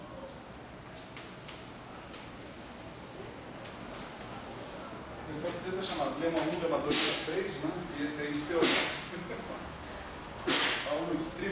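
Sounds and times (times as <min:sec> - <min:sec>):
speech: 0:05.4 - 0:09.8, 0:10.9 - 0:11.4
loud sneeze: 0:06.9 - 0:07.3, 0:08.6 - 0:09.0, 0:10.4 - 0:10.9.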